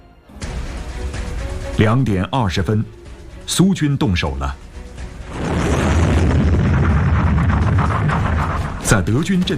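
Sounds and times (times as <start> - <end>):
speech: 1.8 - 4.6, 8.9 - 9.5
heavy artillery shelling of enemy positions: 5.1 - 9.5.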